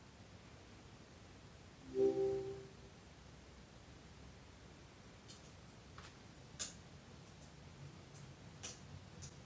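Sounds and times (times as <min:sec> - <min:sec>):
brief electronic chime from a smart speaker: 0:01.9 - 0:02.8.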